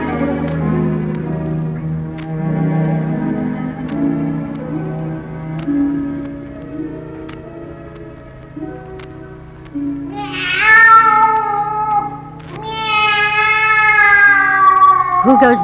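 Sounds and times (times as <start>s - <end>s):
low steady tones: 0.0s - 15.6s
cat meowing: 10.1s - 15.6s.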